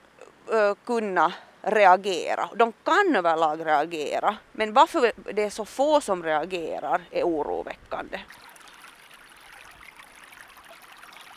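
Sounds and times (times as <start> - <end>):
speech: 0.6 - 8.5
running water trickling at a pond: 5.8 - 11.3.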